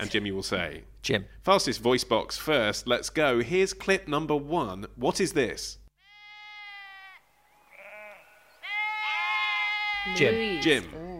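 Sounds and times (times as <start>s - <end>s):
speech: 0.0s - 5.8s, 10.0s - 11.1s
sheep bleating: 6.0s - 11.1s.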